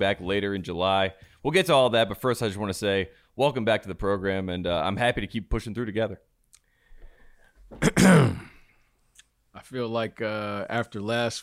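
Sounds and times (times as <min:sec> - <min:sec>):
speech: 0:00.0 - 0:06.3, 0:07.7 - 0:08.5, 0:09.6 - 0:11.4
throat clearing: 0:07.7 - 0:08.7.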